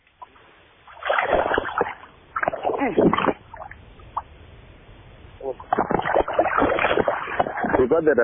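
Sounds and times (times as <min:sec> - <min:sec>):
hooked bass splashing and thrashing in water: 0:00.9 - 0:03.8, 0:05.6 - 0:08.0
speech: 0:02.8 - 0:03.2, 0:07.9 - 0:08.2.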